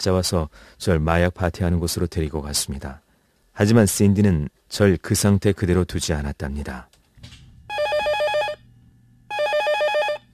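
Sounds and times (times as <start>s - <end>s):
speech: 0.0s - 3.0s, 3.6s - 7.0s
telephone ringing with trilling electronic bell tone: 7.7s - 8.7s, 9.3s - 10.3s.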